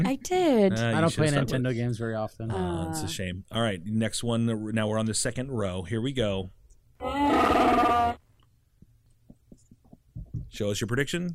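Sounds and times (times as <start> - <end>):
speech: 0.0 - 8.1, 10.5 - 11.3
Wookiee roar sound effect: 7.0 - 8.2.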